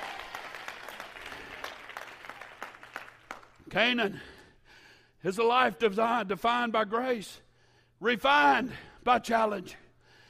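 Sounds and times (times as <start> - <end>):
audience clapping: 0.0 - 3.7
speech: 3.7 - 4.4, 5.2 - 7.4, 8.0 - 9.8.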